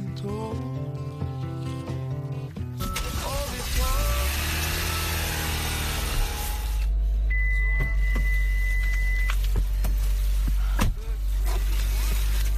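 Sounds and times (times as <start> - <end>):
car engine rumbling: 0.0 - 12.5
brief electronic tone: 6.5 - 9.4.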